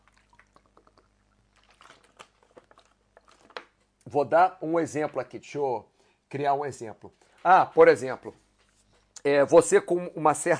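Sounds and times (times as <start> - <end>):
person swallowing water: 0.0 - 3.7
person sipping water: 0.0 - 3.9
speech: 4.1 - 8.4, 9.2 - 10.5.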